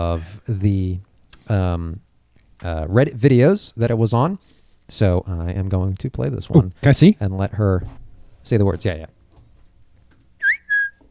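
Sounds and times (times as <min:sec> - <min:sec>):
speech: 0:00.0 - 0:02.0, 0:02.6 - 0:09.2
two short clear whistled notes: 0:10.4 - 0:11.0.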